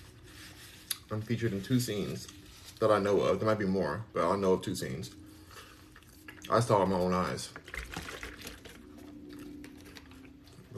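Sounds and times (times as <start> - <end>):
speech: 1.1 - 5.2, 6.5 - 7.8
liquid pouring into a cup: 5.9 - 10.4.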